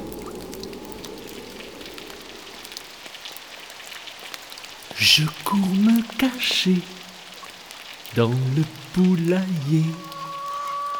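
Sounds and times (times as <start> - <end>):
light wind: 0.0 - 4.9
steady rain falling on a surface: 0.0 - 10.9
speech: 5.0 - 7.0, 8.2 - 10.1.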